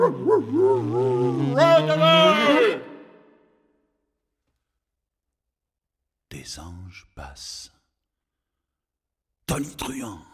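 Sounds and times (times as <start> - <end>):
speech: 0.0 - 2.8, 6.4 - 7.8, 9.5 - 10.3
dog howling: 0.0 - 3.0.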